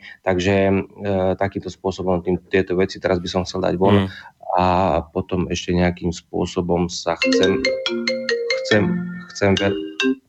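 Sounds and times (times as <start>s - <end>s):
speech: 0.1s - 10.2s
mobile phone ringtone: 7.3s - 10.2s.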